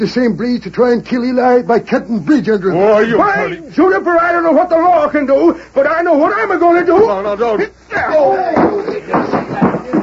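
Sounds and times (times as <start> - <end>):
speech: 0.0 - 10.0
wooden chair breaking as a man crashes into it: 8.0 - 10.0
heavy thuds: 8.5 - 10.0
man taking a punch: 8.5 - 10.0
clattering knocks: 8.6 - 10.0.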